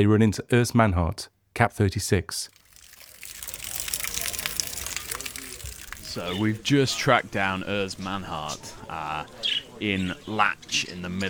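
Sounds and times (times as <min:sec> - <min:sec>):
speech: 0:00.0 - 0:02.6, 0:06.1 - 0:11.2
rainwater dripping off market tarpaulins: 0:02.5 - 0:06.7.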